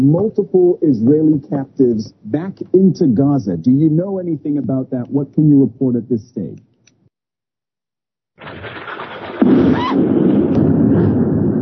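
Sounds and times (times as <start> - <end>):
speech: 0.0 - 6.7, 9.9 - 10.3
loud explosion: 8.4 - 11.6
low rumbling noise: 8.5 - 11.6.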